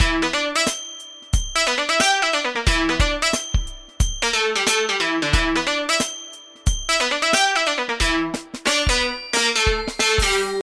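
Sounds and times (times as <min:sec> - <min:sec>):
funky Apple ringtone melody: 0:00.0 - 0:10.6.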